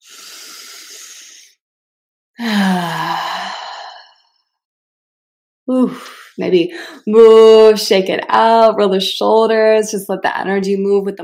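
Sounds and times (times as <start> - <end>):
deep breath in and out: 0.0 - 1.6, 2.4 - 4.2
speech: 5.7 - 11.2.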